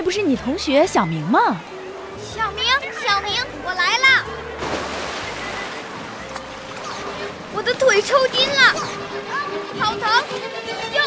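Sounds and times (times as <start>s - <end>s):
speech: 0.1s - 4.4s, 7.6s - 11.0s
splashing water in a crowded indoor swimming pool: 4.6s - 9.0s.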